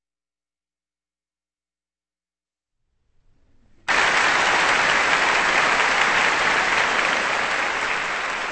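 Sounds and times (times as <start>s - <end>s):
large concert audience applauding at a symphony orchestra performance: 3.9s - 8.5s.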